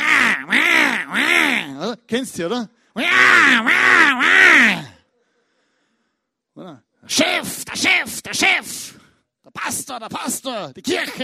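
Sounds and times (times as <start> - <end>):
human voice imitating a crow cawing: 0.0 - 1.8, 3.0 - 5.1, 7.2 - 8.7
speech: 1.9 - 4.9, 6.6 - 11.2.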